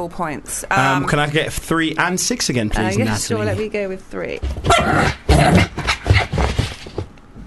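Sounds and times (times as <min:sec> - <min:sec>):
speech: 0:00.0 - 0:05.8
dog barking and yelping: 0:04.6 - 0:06.4.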